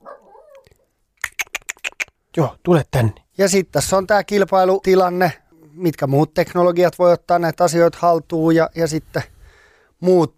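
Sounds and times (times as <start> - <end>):
dog whining: 0.0 - 0.8
speech: 2.4 - 9.3, 10.0 - 10.3.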